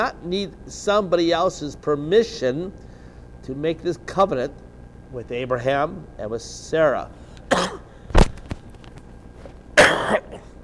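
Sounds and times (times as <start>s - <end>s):
speech: 0.0s - 2.8s, 3.4s - 7.8s
person coughing with a throaty rasp: 7.5s - 8.0s, 9.8s - 10.6s.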